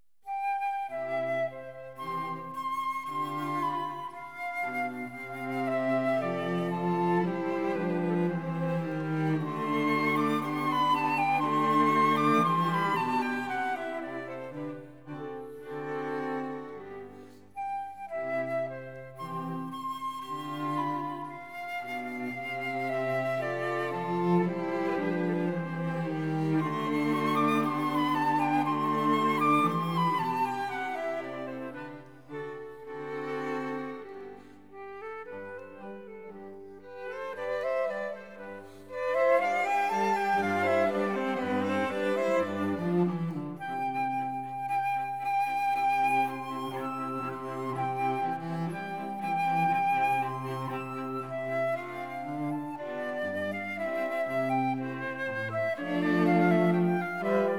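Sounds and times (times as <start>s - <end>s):
flute: 0.2s - 57.5s
cello: 0.3s - 57.5s
violin: 0.3s - 57.5s.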